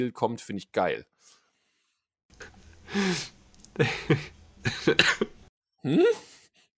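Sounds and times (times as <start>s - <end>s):
speech: 0.0s - 1.4s, 2.4s - 6.3s
man coughing: 3.8s - 5.4s.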